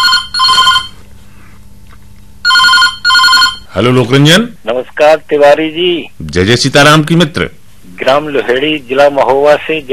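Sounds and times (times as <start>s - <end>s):
telephone ringing with electronic trilling: 0.0s - 1.0s, 2.4s - 3.8s
speech: 3.8s - 9.9s.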